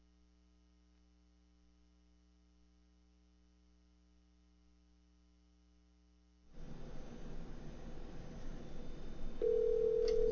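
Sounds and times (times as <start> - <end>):
phone line static hiss during a call: 6.5 - 10.3
telephone ringback tone over the line: 9.4 - 10.3.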